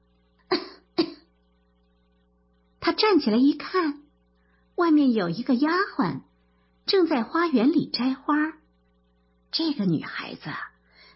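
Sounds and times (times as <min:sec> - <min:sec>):
young woman coughing: 0:00.5 - 0:01.3
speech: 0:02.9 - 0:04.0, 0:04.8 - 0:06.3, 0:06.9 - 0:08.6, 0:09.5 - 0:10.7.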